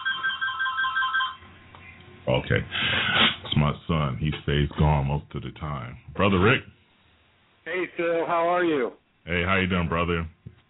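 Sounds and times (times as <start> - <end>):
phone ringtone with repeating electronic pattern of bright tones: 0.0 - 1.4
speech: 2.3 - 6.8, 7.9 - 10.4.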